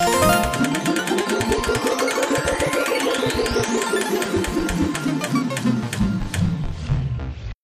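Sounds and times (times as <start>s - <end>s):
wheel spinning: 0.0s - 6.4s.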